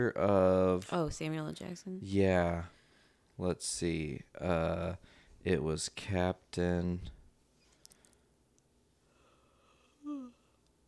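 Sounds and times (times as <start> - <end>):
speech: 0.0 - 2.8, 3.4 - 7.2
person yawning: 10.0 - 10.4.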